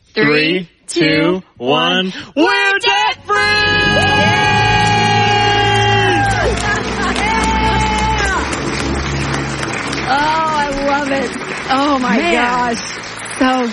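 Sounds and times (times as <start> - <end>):
speech: 0.2 - 4.2, 11.1 - 13.7
jubilant screaming and cheering from a few voices: 3.1 - 13.7
excited chatter and whoops: 3.3 - 8.9.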